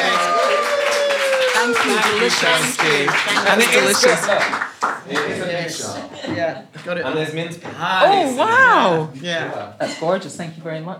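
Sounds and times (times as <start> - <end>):
group applauding: 0.0 - 5.9, 8.0 - 9.1
speech: 1.7 - 10.9.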